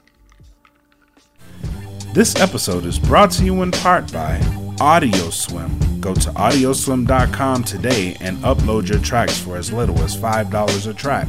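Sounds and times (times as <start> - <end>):
person sipping a drink: 0.0 - 2.0
speech: 2.1 - 11.2.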